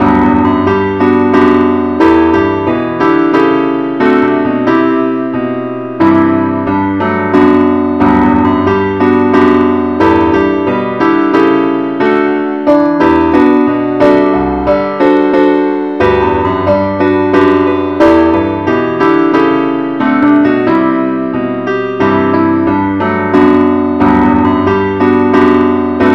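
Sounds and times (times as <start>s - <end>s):
keyboard: 0.0s - 26.1s.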